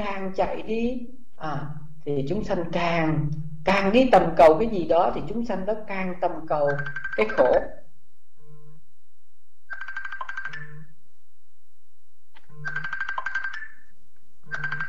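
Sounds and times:
speech: 0:00.0 - 0:07.8
electronic telephone ringtone: 0:06.7 - 0:07.7, 0:09.7 - 0:10.9, 0:12.4 - 0:14.8.

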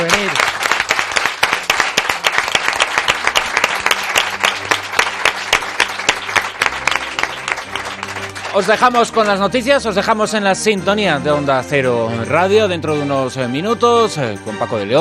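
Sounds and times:
audience of listeners applauding: 0:00.0 - 0:09.5
speech: 0:08.6 - 0:15.0.

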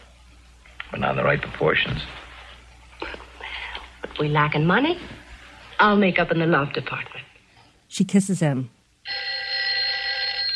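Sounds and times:
speech: 0:00.9 - 0:02.2, 0:04.2 - 0:05.2, 0:05.8 - 0:07.3, 0:07.9 - 0:08.8
bedside telephone ringing: 0:09.0 - 0:10.5.

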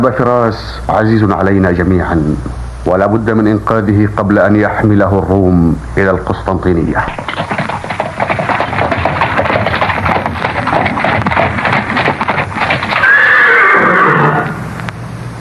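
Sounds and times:
speech: 0:00.0 - 0:07.6
hoofbeats of approaching horses: 0:07.0 - 0:14.6
horse letting out a long loud whinny: 0:07.9 - 0:14.6.

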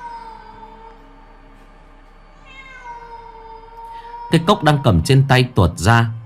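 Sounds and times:
cat meowing at night: 0:00.0 - 0:01.0, 0:02.4 - 0:05.3
low steady hum: 0:00.0 - 0:06.2
speech: 0:04.3 - 0:06.2.

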